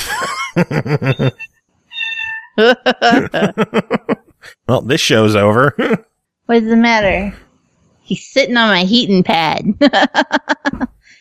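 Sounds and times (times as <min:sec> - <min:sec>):
laughter: 0:00.0 - 0:01.4, 0:02.6 - 0:06.0, 0:09.7 - 0:10.9
speech: 0:00.6 - 0:01.4, 0:02.6 - 0:03.9, 0:04.8 - 0:07.4, 0:08.1 - 0:11.2
cat meowing on a heating pad: 0:02.0 - 0:02.6.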